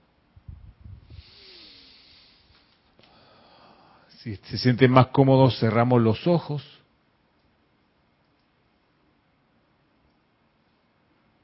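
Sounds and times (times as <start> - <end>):
deep breath in and out: 1.0 - 4.1
speech: 4.2 - 6.7.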